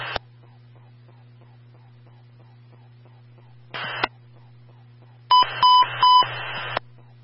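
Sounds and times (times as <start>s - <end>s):
radio static bursts on a fire dispatch radio: 0.0s - 0.2s, 3.4s - 4.1s, 5.3s - 6.9s
steady low hum: 0.0s - 7.2s
electronic beeping tones of an emergency transmission tone test: 5.3s - 6.2s.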